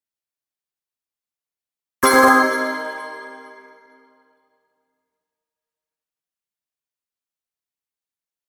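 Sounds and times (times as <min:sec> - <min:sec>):
bells hit with bright reverb: 0:02.0 - 0:04.1.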